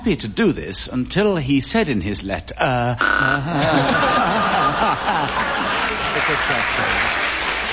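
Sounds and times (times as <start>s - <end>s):
speech: 0.0s - 7.0s
studio audience laughing: 3.0s - 7.2s
studio audience clapping: 4.4s - 7.7s.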